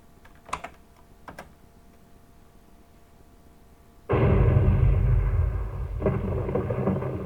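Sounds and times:
soft keyboard clicks: 0:00.2 - 0:01.6
low rumbling undertone: 0:04.1 - 0:07.2
heavy rain pouring: 0:04.2 - 0:07.2.

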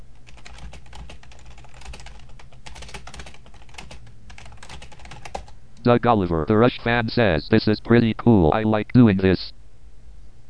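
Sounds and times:
computer keyboard keys clicking as a chat message is typed: 0:00.2 - 0:05.6
speech: 0:05.8 - 0:09.6.

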